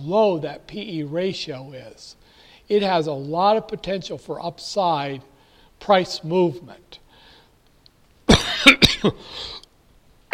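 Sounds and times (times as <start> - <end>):
speech: 0.0 - 6.9, 9.0 - 9.6
person coughing: 8.3 - 9.6.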